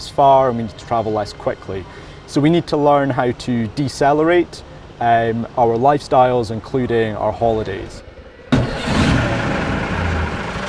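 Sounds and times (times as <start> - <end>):
speech: 0.2 - 8.1
vintage diesel bus engine running with throaty rumble and rattling: 8.5 - 10.6.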